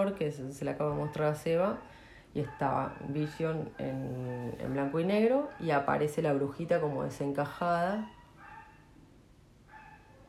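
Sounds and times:
speech: 0.0s - 8.2s
dog barking: 0.9s - 6.0s, 7.9s - 9.0s, 9.7s - 10.2s.

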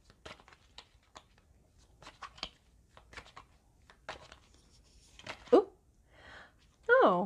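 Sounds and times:
deck of tarot cards being shuffled for a reading: 0.0s - 5.6s.

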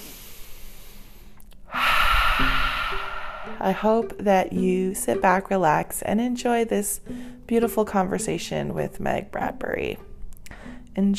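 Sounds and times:
deep breath: 0.0s - 3.7s, 7.1s - 7.4s, 10.5s - 10.8s
speech: 3.6s - 10.1s, 11.0s - 11.1s.

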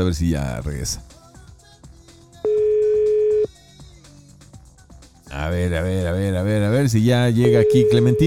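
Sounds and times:
speech: 0.0s - 1.2s, 5.3s - 8.2s
telephone line tone after a dropped call: 2.5s - 3.5s, 7.4s - 8.2s.

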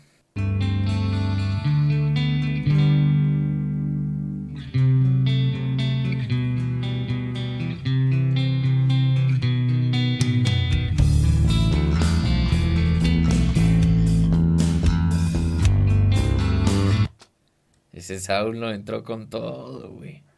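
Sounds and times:
playback of a full band mix: 0.4s - 17.1s
prominent bass guitar line: 0.4s - 17.2s
drums: 10.2s - 17.2s
speech: 18.2s - 20.3s.

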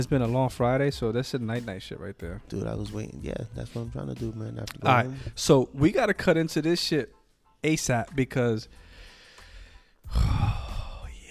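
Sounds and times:
speech: 0.0s - 8.8s, 10.1s - 10.6s
person breathing heavily like a sigh: 8.7s - 11.2s.

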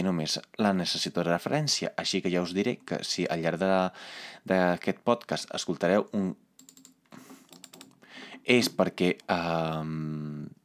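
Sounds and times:
speech: 0.0s - 6.4s, 8.4s - 10.6s
computer mouse clicking: 6.6s - 8.0s.

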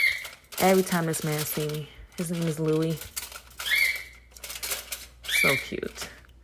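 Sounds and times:
soft scratchy rustling and clicking: 0.0s - 6.3s
speech: 0.6s - 3.2s, 5.4s - 6.2s
small pet baby yellow bird chirping: 3.6s - 4.3s, 5.2s - 5.9s.

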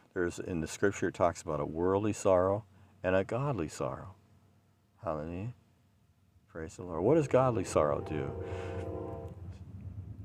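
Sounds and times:
speech: 0.2s - 4.2s, 5.0s - 5.6s, 6.6s - 8.8s
low rumbling of the passing train: 7.0s - 10.2s
train horn from a nearby railway: 7.6s - 9.6s.

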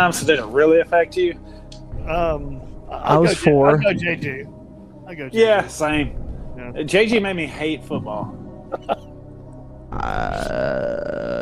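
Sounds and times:
speech: 0.0s - 9.1s, 9.9s - 11.4s
long loud voiced burp: 10.0s - 11.4s.

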